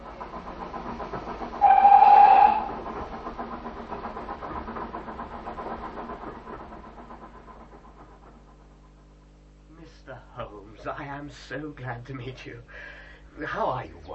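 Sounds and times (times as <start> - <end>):
steam train chugging: 0.0 - 14.1
steam train whistle blast: 1.6 - 2.8
speech: 11.3 - 14.1.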